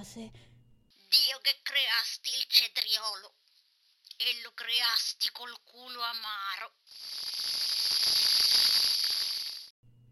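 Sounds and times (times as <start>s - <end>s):
speech: 0.0s - 0.5s, 1.2s - 3.4s, 4.2s - 7.7s
faint low hum: 0.0s - 1.9s, 9.8s - 10.1s
loud hissy crackling sizzle: 6.9s - 9.7s.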